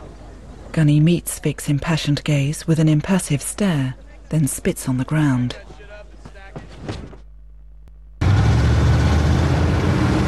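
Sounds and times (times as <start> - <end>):
speech: 0.8 - 5.8
convoy of Humvees and trucks rumbling along a desert trail: 8.2 - 10.2.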